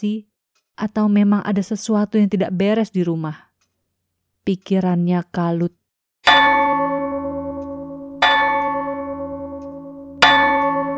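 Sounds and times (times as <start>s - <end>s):
speech: 0.0s - 3.5s, 4.4s - 6.6s
loud resonant metallic clock chimes: 6.3s - 10.9s.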